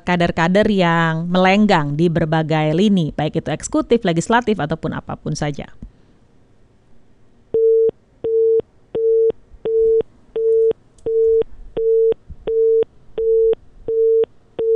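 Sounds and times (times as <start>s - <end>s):
speech: 0.1s - 5.9s
telephone busy tone after a phone call drops: 7.6s - 14.7s.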